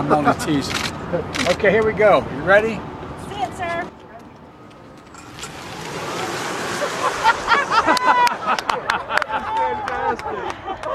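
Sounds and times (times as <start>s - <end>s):
speech: 0.0s - 2.9s
voices talking and exclaiming: 0.0s - 4.6s, 7.6s - 10.6s
car accelerating on a test drive: 5.0s - 8.7s
laughter: 6.6s - 10.9s.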